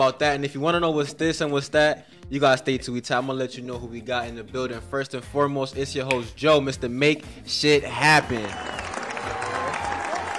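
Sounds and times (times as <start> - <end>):
speech: 0.0 - 8.9
dense applause of many hands clapping: 8.2 - 10.3.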